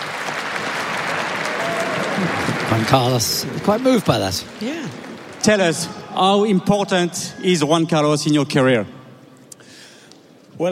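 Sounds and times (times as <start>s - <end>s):
crowd applause at a tennis tournament: 0.0s - 6.1s
speech: 2.2s - 9.0s.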